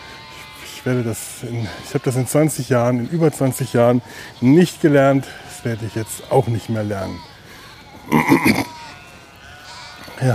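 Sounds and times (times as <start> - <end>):
sheep bleating in Cologne Germany: 0.0 - 10.3
speech: 0.8 - 7.3, 8.1 - 8.8.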